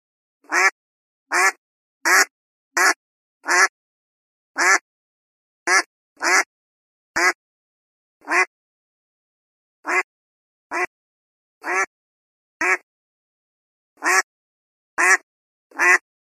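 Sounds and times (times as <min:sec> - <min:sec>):
duck quacking: 0:00.4 - 0:03.7, 0:04.6 - 0:04.8, 0:05.7 - 0:06.5, 0:07.2 - 0:07.4, 0:08.2 - 0:08.5, 0:09.8 - 0:10.1, 0:10.7 - 0:10.9, 0:11.6 - 0:11.9, 0:12.6 - 0:12.8, 0:14.0 - 0:14.3, 0:15.0 - 0:16.0.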